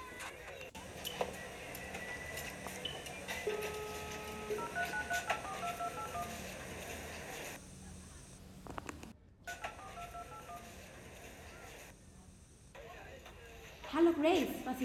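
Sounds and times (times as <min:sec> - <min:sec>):
faint telephone line sounds: 0:00.0 - 0:13.8
steady hum: 0:00.0 - 0:14.8
telephone keypad tones: 0:02.0 - 0:06.5, 0:08.7 - 0:10.6
speech: 0:14.2 - 0:14.8.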